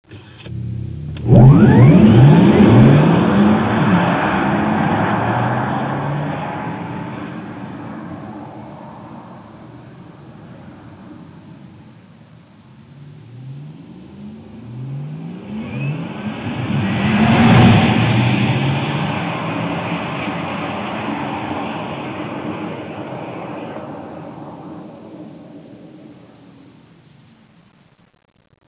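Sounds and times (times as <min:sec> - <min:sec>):
Porsche Taycan electric car: 0:00.1 - 0:27.9.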